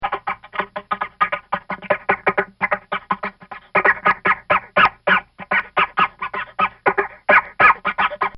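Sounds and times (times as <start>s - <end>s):
cartoon sound effects stuttering: 0.0s - 8.3s.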